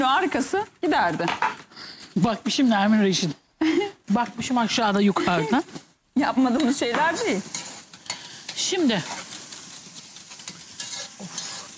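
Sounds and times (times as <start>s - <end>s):
soup food sizzling while sautéed in a pan: 0.0s - 11.7s
speech: 0.2s - 1.5s, 2.2s - 7.6s, 8.6s - 9.2s
spoon scraping a pan: 6.5s - 11.7s.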